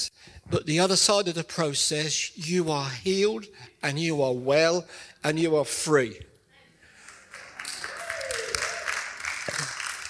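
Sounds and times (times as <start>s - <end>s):
speech: 0.5s - 6.3s
person clapping hands: 7.3s - 10.0s.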